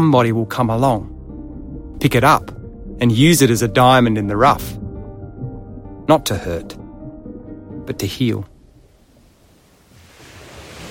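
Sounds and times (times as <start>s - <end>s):
speech: 0.0s - 1.1s, 2.0s - 4.8s, 6.1s - 6.8s, 7.9s - 8.5s
ocean waves washing onto the shore: 8.6s - 10.8s.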